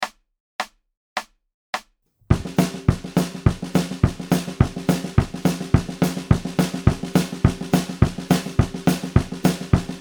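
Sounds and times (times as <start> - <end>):
country train beat: 2.3 - 9.9.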